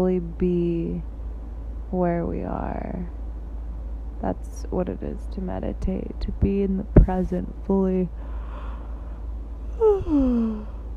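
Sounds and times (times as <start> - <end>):
speech: 0.0 - 1.1, 1.9 - 3.2, 4.2 - 8.3, 9.8 - 10.8
drawn-out yawn with sighing exhale: 9.8 - 10.8.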